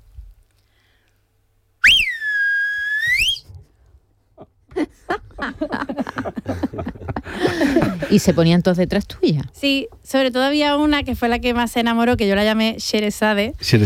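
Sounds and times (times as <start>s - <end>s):
piercing whistle like a shepherd's call to sheep: 1.8s - 3.5s
people laughing: 4.4s - 8.5s
speech: 8.1s - 13.8s.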